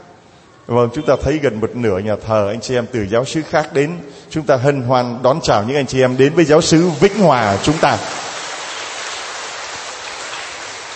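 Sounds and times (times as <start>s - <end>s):
speech: 0.7s - 8.2s
steady rain at a parish church in Vietnam: 6.9s - 10.9s.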